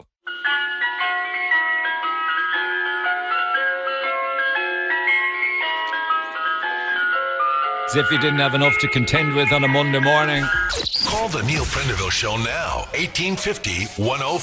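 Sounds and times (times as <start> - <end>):
ice cream van chime: 0.2 - 10.7
speech: 7.9 - 14.4.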